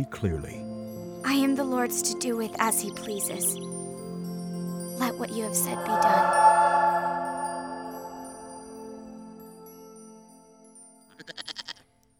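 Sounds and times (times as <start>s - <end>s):
speech: 0.0s - 0.6s, 1.2s - 3.8s, 5.0s - 6.8s
goat bleating: 11.1s - 11.8s.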